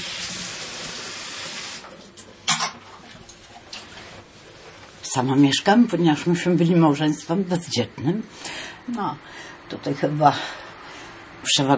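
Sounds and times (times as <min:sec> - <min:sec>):
tap water running into a kettle: 0:00.0 - 0:03.9
speech: 0:05.2 - 0:10.6, 0:11.5 - 0:11.7.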